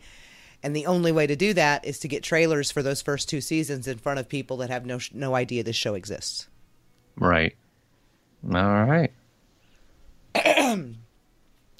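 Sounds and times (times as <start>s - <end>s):
speech: 0.6s - 6.5s, 7.2s - 7.6s, 8.4s - 9.2s
person clearing throat: 10.4s - 11.0s.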